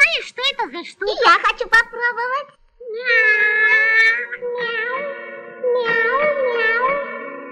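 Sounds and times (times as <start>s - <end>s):
speech: 0.8s - 2.3s
voice imitating a cat meowing: 2.8s - 7.5s.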